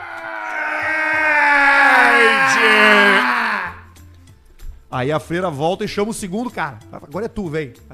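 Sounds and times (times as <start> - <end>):
man's voice imitating a loud drawn-out scream: 0.0 - 3.9
speech: 5.0 - 7.9.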